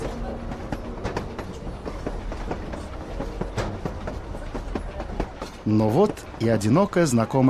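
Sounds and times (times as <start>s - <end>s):
train rumbling along the tracks: 0.0s - 7.4s
speech: 5.7s - 7.4s.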